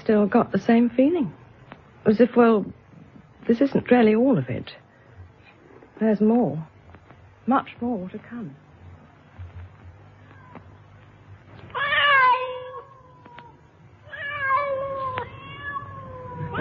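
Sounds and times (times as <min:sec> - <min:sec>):
speech: 0:00.1 - 0:01.4, 0:02.0 - 0:02.8, 0:03.5 - 0:04.8, 0:06.0 - 0:06.7, 0:07.5 - 0:08.6
cat on a roof wailing meows: 0:11.7 - 0:16.5.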